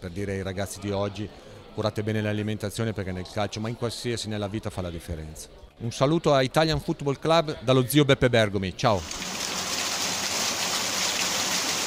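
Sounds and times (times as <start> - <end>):
speech: 0.0 - 9.4
water rushing through a water mill: 9.0 - 11.8.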